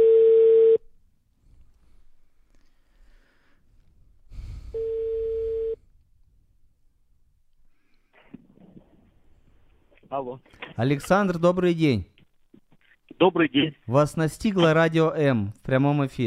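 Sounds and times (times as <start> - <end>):
telephone ringback tone while a call is being placed: 0.0 - 0.8, 4.8 - 5.8
speech: 10.2 - 12.1, 13.2 - 16.2.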